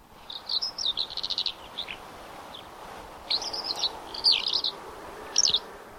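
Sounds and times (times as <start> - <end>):
soft background hiss from tape: 0.0 - 5.9
Eurasian skylark giving chirping and trilled notes: 0.3 - 2.7, 3.3 - 4.8, 5.4 - 5.6.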